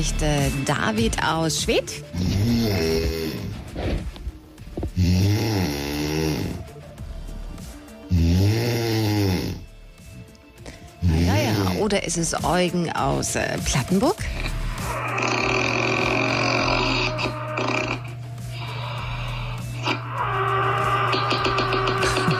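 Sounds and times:
speech: 0:00.0 - 0:04.1, 0:11.9 - 0:14.3
sleeping person snoring in Brandenburg Germany: 0:02.0 - 0:04.1, 0:04.9 - 0:09.7, 0:10.6 - 0:11.9, 0:14.3 - 0:22.3.

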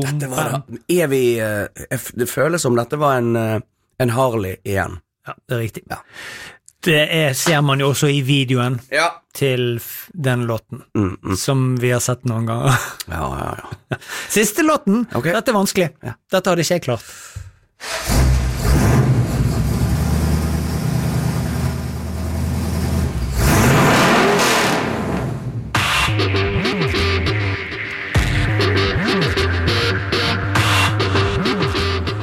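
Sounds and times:
speech: 0:00.0 - 0:19.0
hot rod car engine revving: 0:17.9 - 0:32.2.

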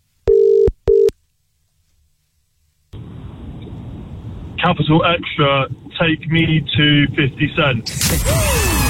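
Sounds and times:
double-pulse telephone ringback tone: 0:00.3 - 0:01.1
speech: 0:04.6 - 0:08.7.

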